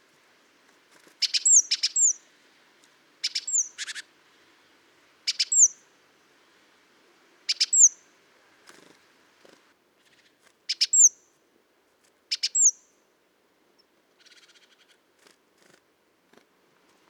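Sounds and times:
great tit Parus major calling: 1.2s - 2.2s, 3.2s - 4.0s, 5.3s - 5.8s, 7.5s - 8.0s, 12.3s - 12.8s.

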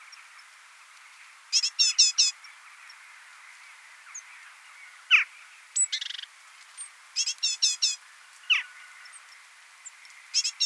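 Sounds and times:
great tit Parus major calls: 1.5s - 10.6s.

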